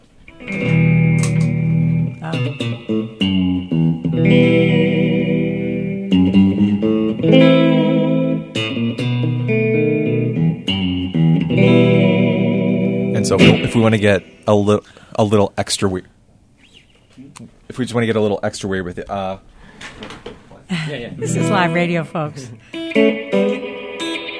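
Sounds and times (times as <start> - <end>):
harmonically rich instrument playing chords drenched in reverb: 0.3 - 14.5, 21.2 - 24.3
speech: 0.4 - 0.7, 13.3 - 16.2, 17.4 - 23.5.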